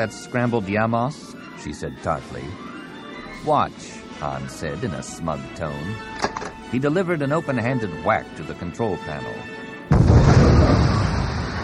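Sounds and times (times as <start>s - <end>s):
speech: 0.0s - 2.8s, 3.4s - 9.6s
concussion missile exploding in a starship dogfight: 9.9s - 11.6s.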